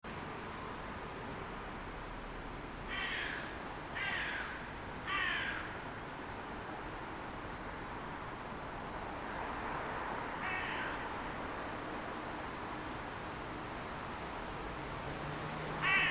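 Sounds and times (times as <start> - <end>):
steady background hiss: 0.1 - 16.1
carrion crow Corvus corone giving harsh hoarse caws: 2.9 - 5.8, 10.4 - 11.1, 15.8 - 16.1.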